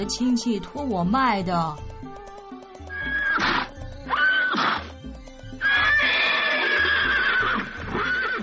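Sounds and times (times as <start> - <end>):
speech: 0.0 - 2.2
thin underfed horse neighing: 2.9 - 4.9, 5.6 - 8.4.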